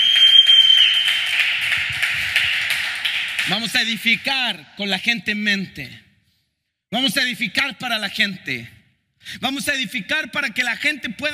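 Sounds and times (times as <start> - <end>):
audience applauding: 0.0 - 4.0
speech: 3.5 - 6.0, 6.9 - 11.3.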